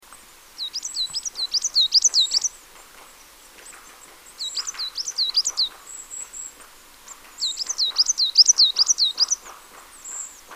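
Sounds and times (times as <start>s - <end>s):
Marsh tit Poecile palustris giving runs of sharp high notes: 0.6s - 2.5s, 3.8s - 6.5s, 7.4s - 10.5s.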